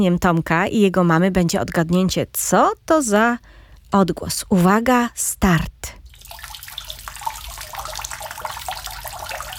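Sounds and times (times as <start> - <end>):
speech: 0.0 - 6.0
running water from a household tap: 6.1 - 9.5.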